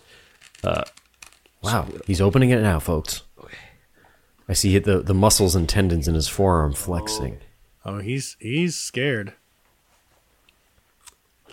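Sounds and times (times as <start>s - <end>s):
speech: 0.6s - 0.9s, 1.7s - 3.6s, 4.5s - 9.4s
crunch of biting into a homemade brine pickle: 11.0s - 11.5s.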